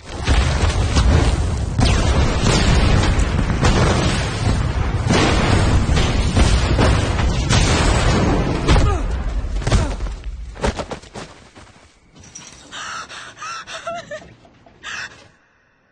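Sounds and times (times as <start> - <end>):
explosions with rumbling debris in a film scene: 0.0 - 10.1.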